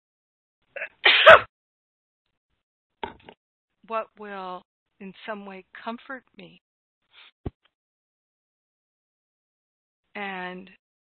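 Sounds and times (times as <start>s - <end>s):
person sneezing loudly: 0.8s - 1.5s
speech: 3.9s - 6.7s, 10.2s - 10.8s.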